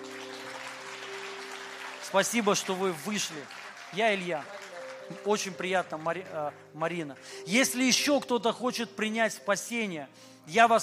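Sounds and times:
crowd clapping: 0:00.0 - 0:08.1
speech: 0:02.1 - 0:10.8.

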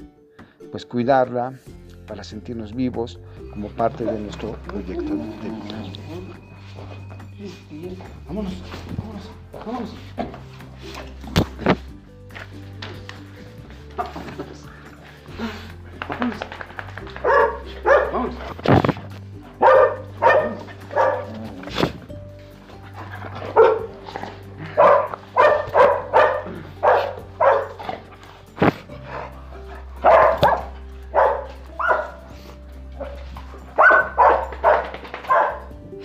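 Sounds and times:
speech: 0:00.7 - 0:11.8, 0:14.0 - 0:14.8
two dogs barking: 0:15.1 - 0:36.0
dogs yipping: 0:16.9 - 0:21.9, 0:22.6 - 0:35.8.

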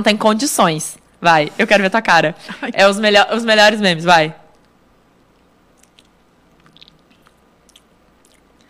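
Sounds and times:
speech: 0:00.0 - 0:04.4
quiet low hum: 0:00.0 - 0:08.6
moist chewing and crunching of a salty snack: 0:05.2 - 0:08.6.

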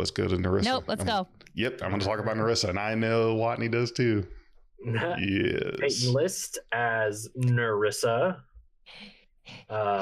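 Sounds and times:
speech: 0:00.0 - 0:10.0
loud heavy breathing: 0:08.9 - 0:10.0.

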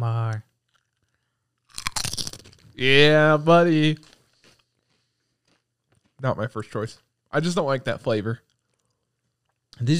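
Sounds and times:
chewing ridged potato chips: 0:00.6 - 0:02.8, 0:04.0 - 0:06.2, 0:08.4 - 0:09.7
speech: 0:02.8 - 0:04.1, 0:06.2 - 0:08.5, 0:09.8 - 0:09.9.

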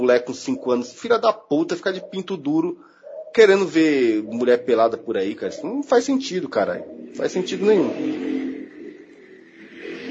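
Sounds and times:
speech: 0:00.1 - 0:08.4
motorcycle engine revving as it passes outside: 0:06.4 - 0:10.1.

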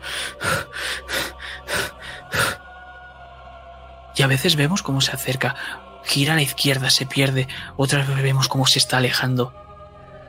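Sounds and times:
hurried heavy breathing with rapid gasping breaths: 0:00.0 - 0:02.9
speech: 0:04.2 - 0:09.6.

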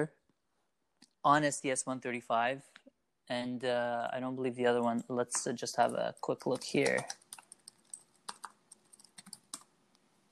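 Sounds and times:
speech: 0:00.0 - 0:00.2, 0:01.2 - 0:07.2
keystrokes on a computer keyboard typing a Google search: 0:05.8 - 0:09.7.

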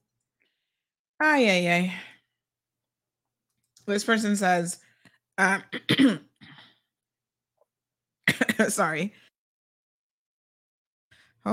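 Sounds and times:
speech: 0:01.2 - 0:02.1, 0:03.9 - 0:06.3, 0:08.6 - 0:09.2
hoarse coughs from someone recovering from the flu: 0:05.7 - 0:06.7, 0:08.3 - 0:08.8.

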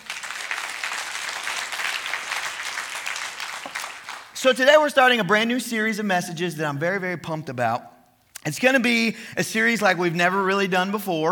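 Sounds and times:
church audience applauding: 0:00.0 - 0:04.4
speech: 0:04.4 - 0:11.3.

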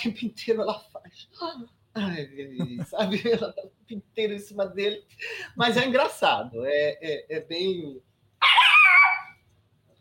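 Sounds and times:
speech: 0:00.0 - 0:08.6
female dog barking: 0:08.4 - 0:09.4.

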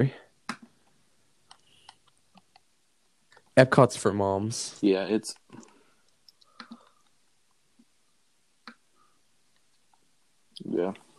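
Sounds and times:
speech: 0:00.0 - 0:00.2, 0:03.6 - 0:05.7
computer keyboard typing: 0:01.5 - 0:02.7, 0:06.3 - 0:06.9.

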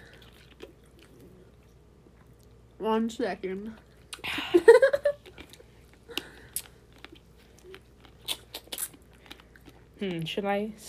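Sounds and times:
sticky chewing of a Starburst candy: 0:00.0 - 0:02.6, 0:05.1 - 0:10.3
speech: 0:02.8 - 0:03.9, 0:10.0 - 0:10.8.

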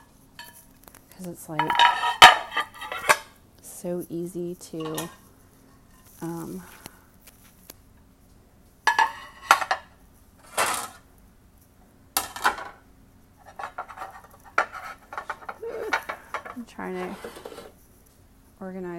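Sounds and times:
speech: 0:01.2 - 0:02.2, 0:03.8 - 0:05.2, 0:06.2 - 0:06.8, 0:16.8 - 0:17.6, 0:18.6 - 0:18.9
plates and glass bowls clattering as they are handled and stacked: 0:01.6 - 0:03.3, 0:04.8 - 0:05.2, 0:08.9 - 0:09.9, 0:12.2 - 0:12.8, 0:13.5 - 0:17.7.

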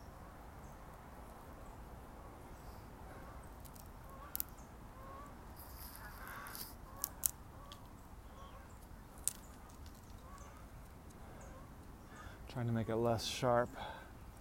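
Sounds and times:
steady outdoor hiss: 0:00.0 - 0:14.3
geese honking while flying overhead: 0:03.0 - 0:08.7, 0:11.3 - 0:12.3
speech: 0:12.5 - 0:14.0.

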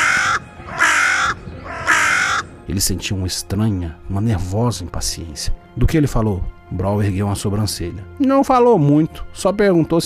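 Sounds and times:
bird screeching as it flies back to a roof: 0:00.0 - 0:02.5
speech: 0:02.7 - 0:10.0.

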